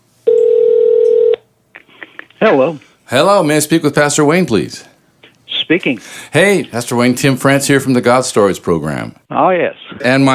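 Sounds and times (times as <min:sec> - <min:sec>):
steady telephone dialing tone: 0:00.3 - 0:01.4
speech: 0:02.4 - 0:04.9, 0:05.7 - 0:10.3.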